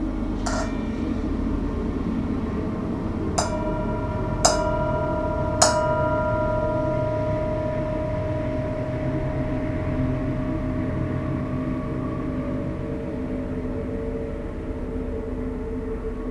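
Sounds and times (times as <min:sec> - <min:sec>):
low rumble of a passing train: 0:00.1 - 0:16.3
mindfulness bell ringing: 0:00.5 - 0:01.6, 0:03.4 - 0:13.3.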